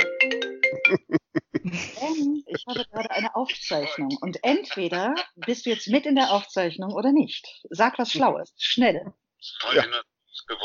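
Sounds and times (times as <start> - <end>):
phone ringtone for an incoming call: 0.0 - 1.0
laughter: 0.8 - 6.8, 9.6 - 10.0
speech: 0.9 - 1.9, 2.6 - 10.6.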